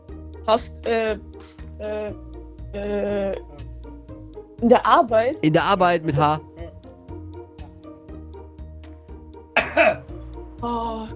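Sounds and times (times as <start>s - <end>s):
steady rhythmic music bed: 0.0s - 11.1s
speech: 0.5s - 3.6s, 4.6s - 6.5s
short harsh cough: 9.6s - 10.1s.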